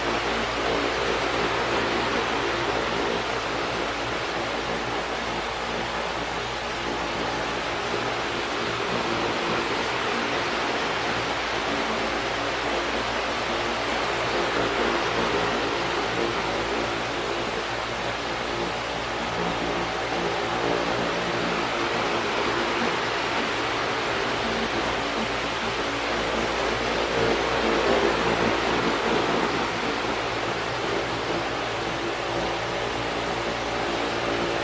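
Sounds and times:
fan running on its highest setting: 0.0s - 34.6s.

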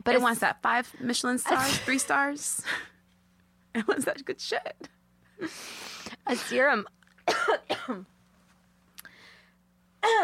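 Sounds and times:
speech: 0.0s - 2.9s, 3.7s - 8.1s, 10.0s - 10.2s
quiet hum: 0.0s - 10.2s
person coughing: 7.3s - 8.1s, 10.0s - 10.2s.

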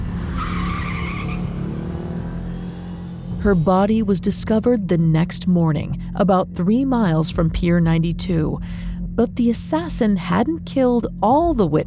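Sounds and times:
car tires squealing: 0.0s - 4.0s
car accelerating hard with engine roar: 0.0s - 9.1s
speech: 3.4s - 11.8s.

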